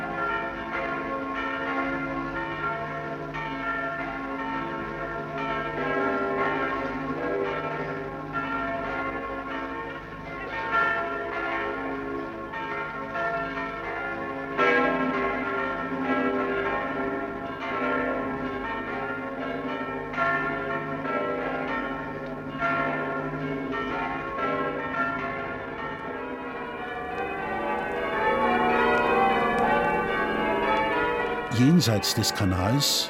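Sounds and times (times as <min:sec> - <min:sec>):
church bells pealing in bright high tones: 0:00.0 - 0:33.0
speech: 0:31.8 - 0:33.0.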